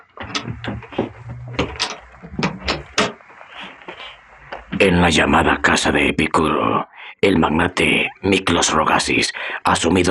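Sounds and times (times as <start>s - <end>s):
door being pulled shut with knocks and handle rattles: 0.2s - 3.2s
speech: 4.8s - 10.0s.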